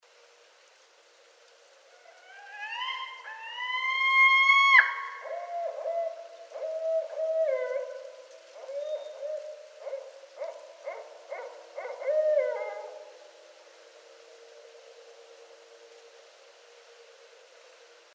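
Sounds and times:
Barred Owl hooting: 0:02.0 - 0:13.2.

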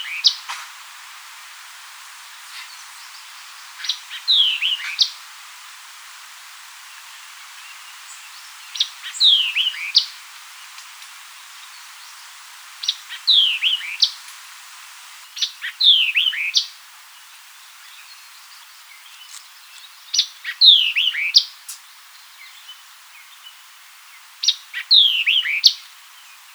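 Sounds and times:
white-eyed vireo singing: 0:02.6 - 0:05.2, 0:07.6 - 0:10.2, 0:12.8 - 0:14.2, 0:15.3 - 0:16.8, 0:20.1 - 0:21.5, 0:24.4 - 0:26.3.

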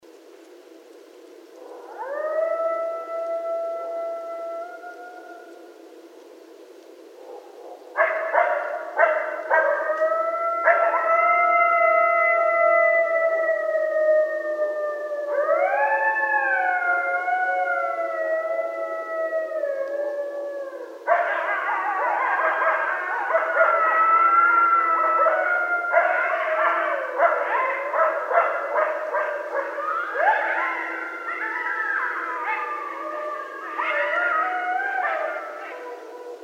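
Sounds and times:
Canis latrans coyotes at night: 0:00.1 - 0:36.4.

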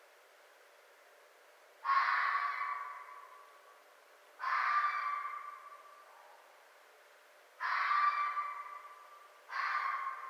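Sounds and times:
red fox uttering hoarse screams: 0:01.8 - 0:03.5, 0:04.4 - 0:06.1, 0:07.6 - 0:10.2.

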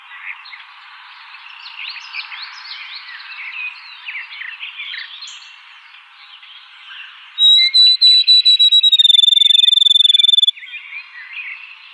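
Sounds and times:
birds chirping softly: 0:05.2 - 0:10.5
field sparrow song, falling whistled notes speeding into a trill: 0:07.4 - 0:10.5.

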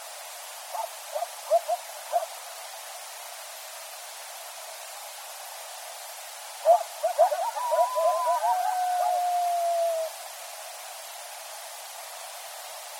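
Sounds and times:
several coyotes yipping at night: 0:00.7 - 0:02.3, 0:06.6 - 0:10.1
coyote howl at night: 0:06.7 - 0:10.2.

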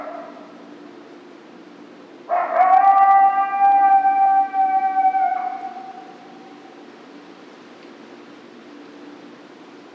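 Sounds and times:
coyote howl: 0:02.3 - 0:06.8.

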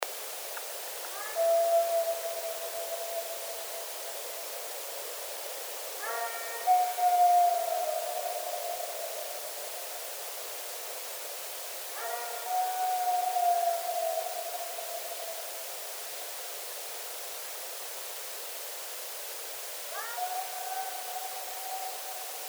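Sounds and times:
howl attributed to bigfoot in Colorado: 0:01.2 - 0:04.0, 0:06.0 - 0:09.7, 0:12.0 - 0:15.6, 0:19.9 - 0:22.4.

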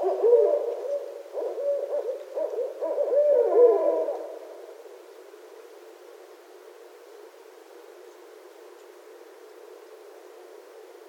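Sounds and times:
Barred owl hooting: 0:00.0 - 0:04.8.

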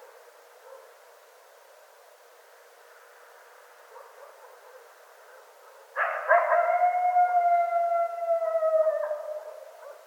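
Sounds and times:
coyote howling: 0:06.0 - 0:09.9.

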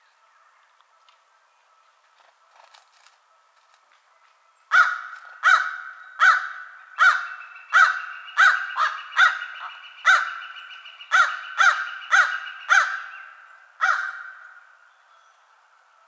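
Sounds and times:
American crow giving rough nasal caws: 0:04.7 - 0:14.8.

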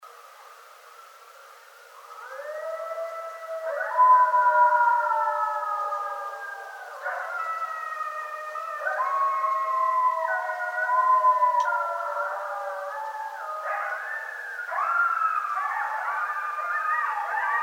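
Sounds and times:
group of coyotes howling: 0:00.3 - 0:17.6.

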